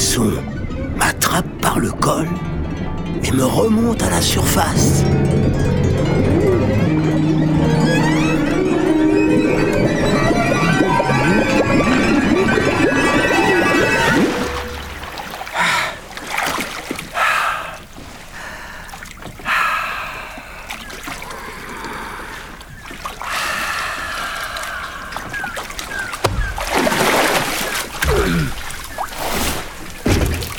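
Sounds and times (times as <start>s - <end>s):
speech: 0.2s - 5.8s
small boat moving on water at sea: 0.5s - 30.5s.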